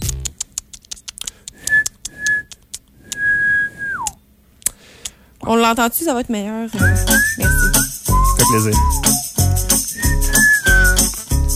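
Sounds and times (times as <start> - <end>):
person whistling an imitation of a mole's noise: 1.6 - 4.2, 6.8 - 11.2
speech: 5.5 - 7.8, 8.4 - 9.2.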